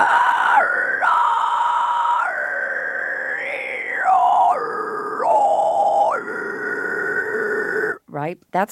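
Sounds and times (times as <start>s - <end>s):
high-pitched vocal shriek from upper vocal folds: 0.0s - 8.0s
speech: 8.3s - 8.6s.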